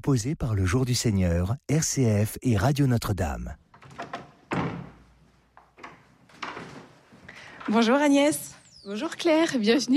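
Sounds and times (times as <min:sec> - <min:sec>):
speech: 0:00.0 - 0:03.6, 0:07.7 - 0:09.9
door latch clunking and rattling: 0:03.7 - 0:06.9
office door in a new building swinging shut: 0:03.8 - 0:05.2.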